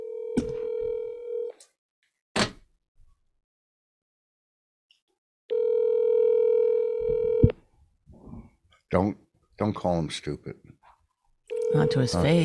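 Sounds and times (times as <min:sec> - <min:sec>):
outgoing phone call ringback tone: 0:00.0 - 0:01.5, 0:05.5 - 0:07.5, 0:11.5 - 0:12.4
speech: 0:08.9 - 0:10.8, 0:11.7 - 0:12.4.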